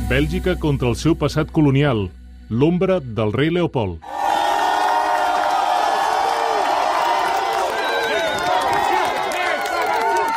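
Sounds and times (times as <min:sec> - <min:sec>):
speech: 0:00.1 - 0:04.1
protest crowd shouting in the streets of Belgium: 0:04.0 - 0:10.3
protesters whooping and cheering: 0:04.0 - 0:10.3.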